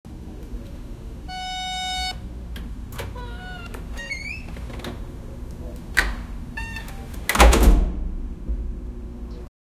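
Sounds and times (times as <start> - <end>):
retail store door opening: 0.3 - 8.0.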